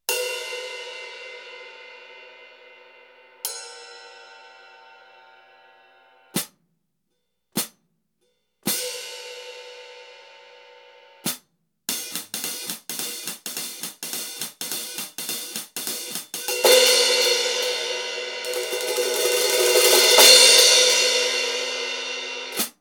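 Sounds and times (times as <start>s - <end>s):
hi-hat hits: 11.3s - 22.8s.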